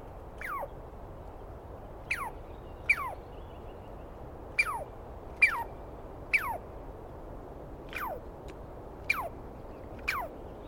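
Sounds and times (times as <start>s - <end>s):
Douglas squirrel calling in the East Cascades: 0.4s - 0.8s, 2.0s - 3.6s, 4.5s - 6.7s, 7.9s - 8.2s, 9.0s - 10.5s.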